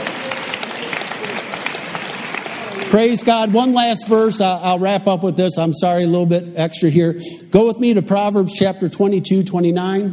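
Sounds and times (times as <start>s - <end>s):
audience clapping hands: 0.0s - 4.8s
speech: 2.9s - 10.1s.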